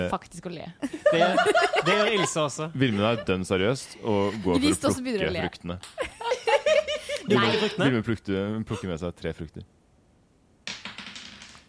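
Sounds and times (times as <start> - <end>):
speech: 0.0 - 6.1, 7.3 - 9.8
laughter: 0.8 - 5.1, 6.0 - 8.1
dice rolling across a hard surface: 10.6 - 11.6.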